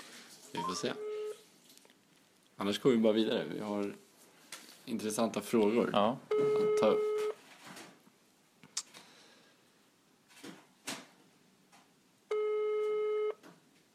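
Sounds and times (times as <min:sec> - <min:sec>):
speech: 0:00.6 - 0:01.1, 0:02.6 - 0:04.0, 0:04.8 - 0:07.1
telephone ringing with a steady electronic ring: 0:00.6 - 0:01.4, 0:06.3 - 0:07.4, 0:12.3 - 0:13.4.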